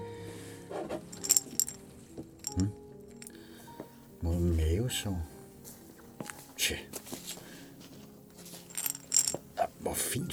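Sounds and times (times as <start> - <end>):
quiet rustling: 1.1 - 4.2, 5.2 - 10.0
four glass pill jars clinking as handled: 1.2 - 1.8, 8.4 - 9.8
speech: 2.6 - 2.8, 4.9 - 5.3, 6.7 - 7.0, 10.0 - 10.3.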